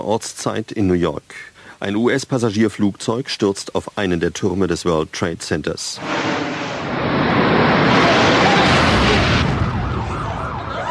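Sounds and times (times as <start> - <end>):
speech: 0.0 - 6.4
bomb explosion in a city centre: 6.0 - 10.4
faint wailing sirens: 6.9 - 10.9.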